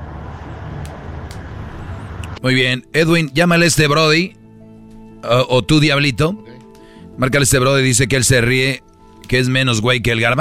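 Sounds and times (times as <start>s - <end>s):
cars passing by on a freeway: 0.0s - 2.4s
speech: 2.4s - 4.4s, 5.2s - 6.5s, 7.2s - 10.3s.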